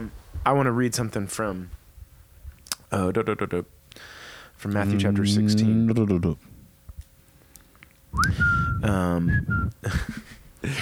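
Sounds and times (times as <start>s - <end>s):
speech: 0.4s - 1.8s, 2.9s - 6.5s, 8.2s - 10.7s
person whistling a theme-song melody: 8.2s - 9.8s
person voiced or laughing sound: 9.8s - 10.7s.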